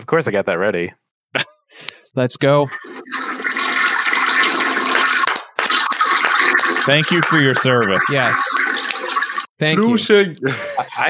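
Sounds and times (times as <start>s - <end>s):
speech: 0.0s - 1.5s, 2.1s - 3.2s, 6.9s - 8.8s, 9.6s - 11.0s
toilet flushing: 2.6s - 10.0s
laughter: 10.4s - 11.0s.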